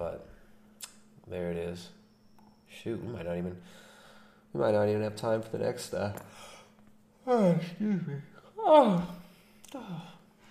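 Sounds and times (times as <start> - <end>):
speech: 1.3 - 2.0, 2.7 - 3.9, 4.5 - 6.5, 7.2 - 10.1
person yawning: 7.3 - 10.3.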